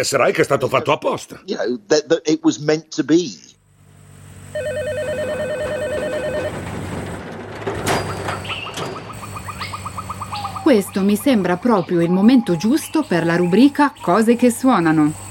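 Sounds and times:
speech: 0.0 - 3.5, 10.7 - 15.2
telephone ringing: 4.5 - 7.2.

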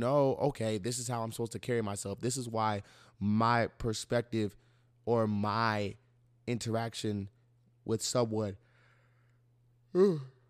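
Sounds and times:
speech: 0.0 - 8.6, 9.9 - 10.4
person yawning: 9.9 - 10.4.

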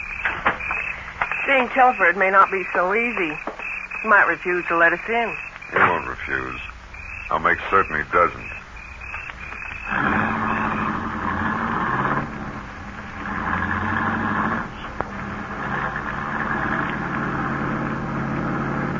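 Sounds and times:
new car engine droning while climbing a steep grade with sharp turns: 0.0 - 18.9
speech: 1.5 - 6.7, 7.3 - 8.6.

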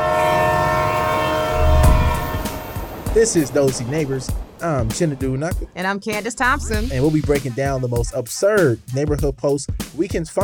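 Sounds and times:
train horn blaring a sustained chord: 0.0 - 7.0
rumbling train passing a home's back door: 0.0 - 7.9
heavy low thump: 1.5 - 5.7
speech: 3.2 - 10.4.

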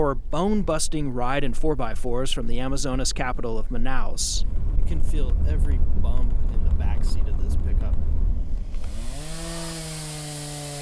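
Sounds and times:
speech: 0.1 - 8.2
rough low rumble: 2.6 - 9.2
chainsaw cutting fallen trees: 8.7 - 10.8
machetes cutting fallen trees: 8.8 - 10.8.

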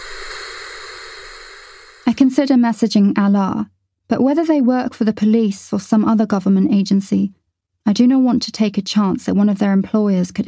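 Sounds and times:
television static between channels: 0.0 - 2.3
speech: 2.1 - 10.4.

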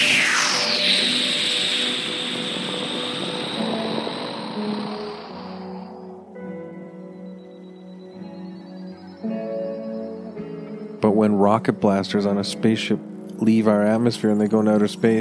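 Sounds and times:
jet flying by overhead: 0.0 - 6.8
speech: 11.2 - 15.2.

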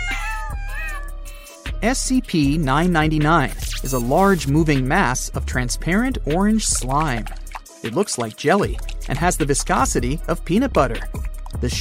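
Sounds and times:
kittens meowing: 0.0 - 1.2
speech: 1.8 - 11.8.

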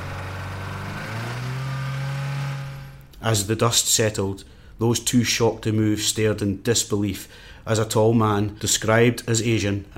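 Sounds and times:
car engine revving with wheels spinning: 0.0 - 3.1
speech: 3.2 - 9.9.

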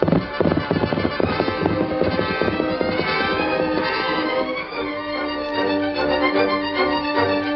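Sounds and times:
galloping hoofbeats of a powerful horse: 0.0 - 4.7
orchestral score: 0.2 - 7.5.

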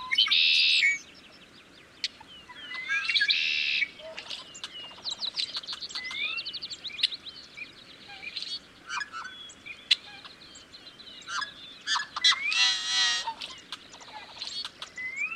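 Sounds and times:
yellow-headed blackbirds calling on cattails in a wetland: 0.0 - 15.3.

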